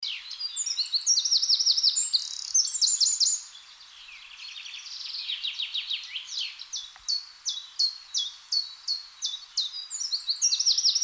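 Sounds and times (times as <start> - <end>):
Eurasian wren Troglodytes troglodytes song with trills and chatters: 0.0 - 11.0.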